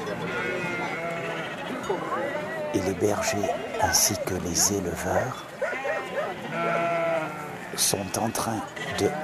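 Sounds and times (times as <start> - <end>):
sheep bleating in a flock at a sheepfold: 0.2 - 2.3, 5.7 - 9.2
speech: 2.8 - 5.5, 7.8 - 9.2.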